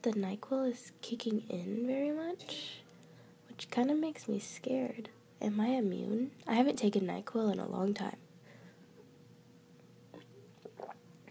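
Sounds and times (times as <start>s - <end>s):
speech: 0.0s - 2.8s, 3.6s - 8.2s
person gulping a drink: 10.1s - 11.2s.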